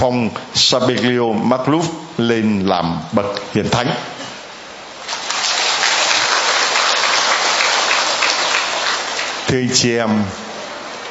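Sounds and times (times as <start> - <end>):
speech: 0.0 - 4.1, 9.5 - 10.5
rain pouring down outdoors: 5.0 - 9.5.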